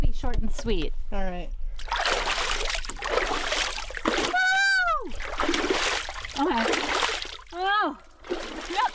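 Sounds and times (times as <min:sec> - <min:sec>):
speech: 0:00.2 - 0:02.0
ice water from a cold plunge tub splashed on face and hands: 0:01.8 - 0:07.6.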